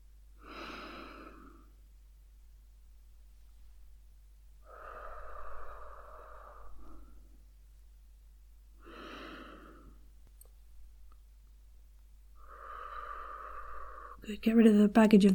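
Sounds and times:
person breathing out during a guided relaxation exercise: 0.4 - 1.8, 4.6 - 7.4, 8.8 - 10.1, 12.4 - 14.2
speech: 14.3 - 15.3.

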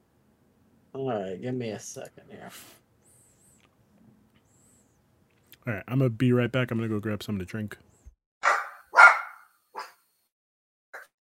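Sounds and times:
speech: 1.0 - 2.8, 5.6 - 7.9
dogs barking: 8.4 - 10.0.

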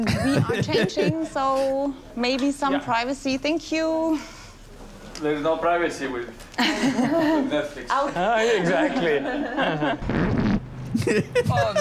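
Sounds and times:
laughter: 0.0 - 1.3, 6.6 - 10.1, 10.9 - 11.7
speech: 0.0 - 4.4, 5.2 - 10.4, 11.0 - 11.7
loud fart: 10.0 - 10.7.

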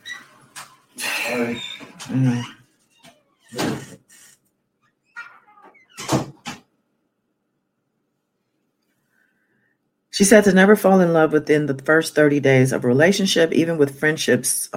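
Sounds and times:
door creaking and squeaking: 0.0 - 6.7
speech: 1.3 - 2.6, 10.2 - 14.7.

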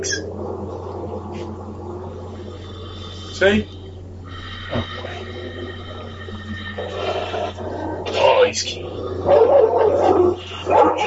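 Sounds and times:
low steady hum: 0.0 - 11.0
speech: 3.4 - 3.8, 8.4 - 11.0
black dog barking and yipping while trying to push through a fence: 9.3 - 11.0.

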